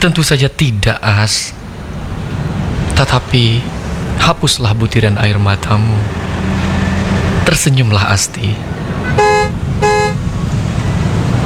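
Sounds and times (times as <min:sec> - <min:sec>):
speech: 0:00.0 - 0:01.7, 0:03.0 - 0:06.6, 0:07.4 - 0:08.7
constant low bus engine rumble: 0:00.7 - 0:11.4
bus horn blasts before departure: 0:08.8 - 0:10.3.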